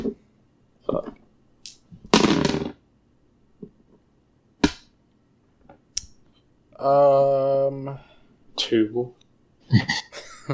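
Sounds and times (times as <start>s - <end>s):
percentile dice rattling and clattering across a hard surface: 2.1s - 2.8s
speech: 6.8s - 10.5s.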